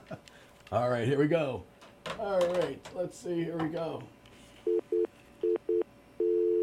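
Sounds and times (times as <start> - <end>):
speech: 0.1 - 4.8
incoming phone call line tone: 4.7 - 6.6.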